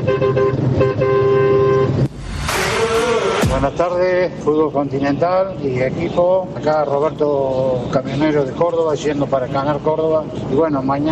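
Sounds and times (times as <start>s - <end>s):
loud brassy truck horn honking on Route 86 in Argentina: 0.0s - 4.0s
rumbling road noise on Route 86 in Argentina: 0.0s - 11.1s
speech: 3.6s - 11.1s.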